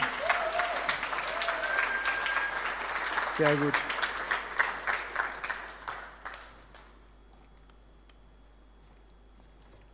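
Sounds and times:
crowd applause: 0.0s - 6.9s
speech: 3.4s - 3.9s.

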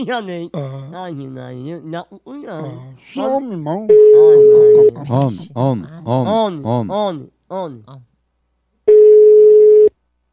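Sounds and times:
speech: 0.0s - 8.1s
telephone ringing tone on the line: 3.9s - 4.9s, 8.9s - 9.9s.

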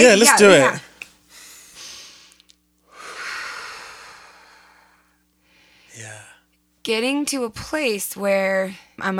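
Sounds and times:
speech: 0.0s - 0.8s, 6.8s - 9.1s
group of people breathing deeply together: 1.3s - 6.5s.

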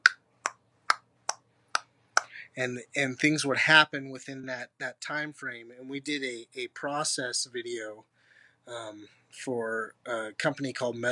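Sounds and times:
tongue clicks imitating a ticking clock: 0.0s - 2.4s
speech: 2.6s - 8.1s, 8.7s - 11.1s.

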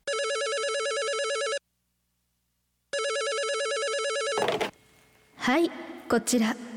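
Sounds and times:
telephone ringing in long electronic bursts: 0.1s - 1.6s, 2.9s - 4.8s
telephone receiver clattering as it is picked up: 4.3s - 4.8s
speech: 5.5s - 6.7s.

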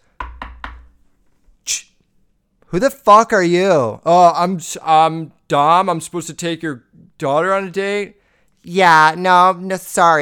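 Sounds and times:
two quick solid knocks on a door: 0.2s - 1.0s
speech: 2.7s - 10.1s.

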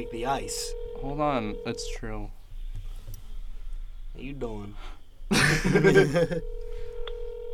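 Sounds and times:
bright electronic phone tones: 0.0s - 2.0s, 5.9s - 7.5s
speech: 0.0s - 2.4s, 4.2s - 6.6s
laughter: 5.3s - 6.4s.

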